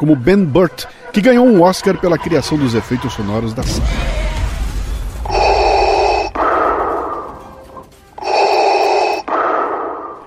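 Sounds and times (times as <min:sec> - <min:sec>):
speech: 0:00.0 - 0:04.2
slow heavy mechanical breathing through a respirator: 0:05.2 - 0:07.4, 0:08.2 - 0:10.2.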